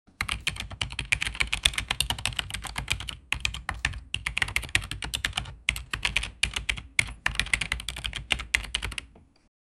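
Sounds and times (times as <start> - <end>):
mechanical keyboard typing: 0.2 - 9.2.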